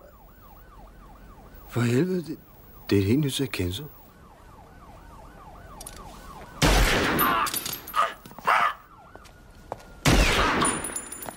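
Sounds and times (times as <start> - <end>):
speech: 1.7 - 4.0
gunshots in a police shooting film scene: 6.6 - 7.6, 10.0 - 11.0.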